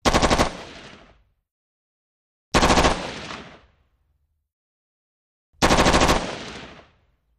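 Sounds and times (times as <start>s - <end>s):
M16 rifle firing short bursts: 0.0s - 0.9s, 2.6s - 3.4s, 5.6s - 6.8s.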